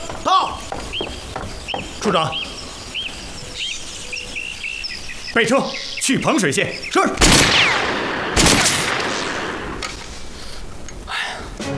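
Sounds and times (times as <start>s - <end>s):
speech: 0.2s - 0.6s, 2.0s - 2.6s, 5.4s - 7.9s
gunshots: 7.2s - 10.0s.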